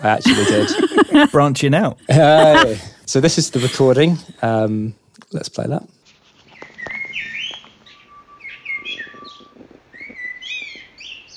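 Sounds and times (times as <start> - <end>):
laughter: 0.0 - 4.6
speech: 0.0 - 6.0
birdsong outdoors from a tree: 5.9 - 11.3.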